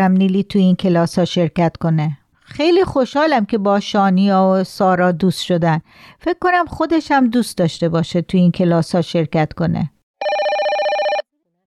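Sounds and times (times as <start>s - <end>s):
speech: 0.0s - 10.4s
telephone bell ringing in a rapid trilling burst: 10.2s - 11.3s.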